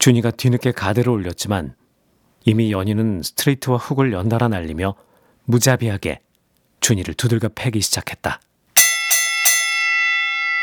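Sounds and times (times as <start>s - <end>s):
speech: 0.0s - 1.8s, 2.4s - 8.5s
boxing ring bell clanging: 8.8s - 10.6s.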